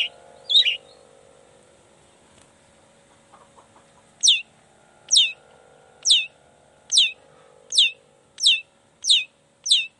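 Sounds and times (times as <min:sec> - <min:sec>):
long-tailed shrike giving sharp descending whistled notes in the morning: 0:00.0 - 0:01.0, 0:04.2 - 0:04.5, 0:05.1 - 0:05.4, 0:06.0 - 0:09.9
low background hum: 0:00.0 - 0:09.9.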